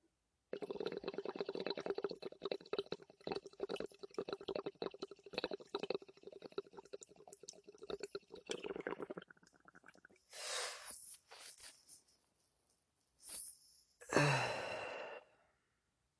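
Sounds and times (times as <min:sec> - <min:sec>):
water bubbling through a dab rig: 0:00.5 - 0:10.2
person exhaling after a dab hit: 0:10.4 - 0:11.0, 0:14.0 - 0:15.4.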